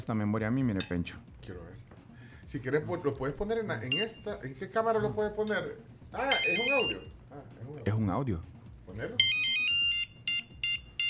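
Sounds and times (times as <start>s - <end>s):
speech: 0.0s - 9.4s
Nokia mobile phone ringtone melody: 3.9s - 4.3s, 6.2s - 7.1s, 9.2s - 11.0s.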